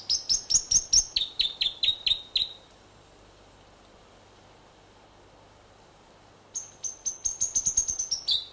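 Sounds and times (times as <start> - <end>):
North Island robin song in New Zealand: 0.0 - 2.7, 6.6 - 8.5.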